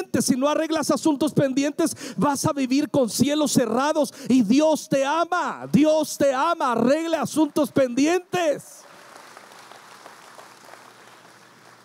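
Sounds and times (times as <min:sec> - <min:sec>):
speech: 0:00.0 - 0:08.8
crowd applauding in a room: 0:08.8 - 0:11.8.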